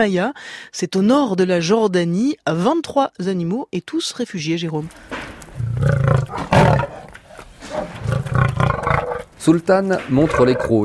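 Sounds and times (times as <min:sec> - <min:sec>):
speech: 0:00.0 - 0:05.2, 0:09.4 - 0:10.8
lion breathing: 0:04.9 - 0:09.5
lion roaring: 0:05.6 - 0:10.8.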